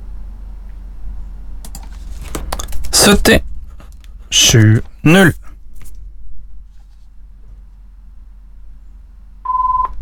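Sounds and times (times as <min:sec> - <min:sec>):
low rumble: 0:00.0 - 0:09.9
speech: 0:03.0 - 0:03.5, 0:04.3 - 0:05.4
short electronic telephone ring tone: 0:09.5 - 0:09.9.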